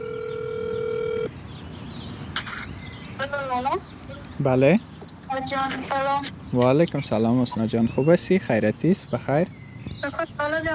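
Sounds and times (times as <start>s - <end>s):
mobile phone ringback tone over speakerphone in a park in Eisenberg: 0.0s - 1.3s
speech: 3.2s - 10.7s.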